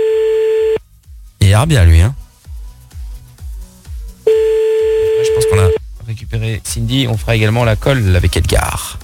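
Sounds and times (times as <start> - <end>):
telephone line ringing tone: 0.0 - 0.8, 4.3 - 5.8
speech: 1.6 - 2.2, 5.6 - 9.0.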